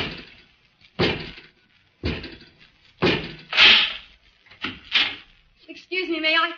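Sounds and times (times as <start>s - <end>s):
heavy clanking thuds of a door opened by a mechanical robot: 1.0s - 4.0s
speech: 5.9s - 6.5s.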